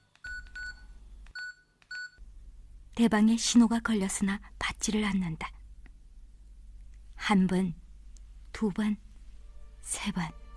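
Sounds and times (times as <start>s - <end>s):
telephone keypad dialing beeps: 0.1s - 2.2s
speech: 3.0s - 5.6s, 7.3s - 7.8s, 8.6s - 9.0s, 9.8s - 10.4s.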